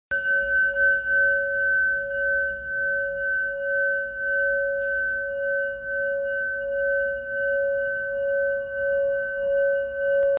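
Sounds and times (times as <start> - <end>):
plain brass singing bowl in C: 0.1 - 10.3.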